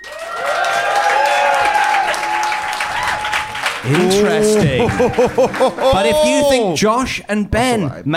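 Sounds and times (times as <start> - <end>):
live audience applauding: 0.0 - 6.7
audience members cheering: 0.0 - 6.8
laughter: 3.8 - 6.6
speech: 3.8 - 8.1.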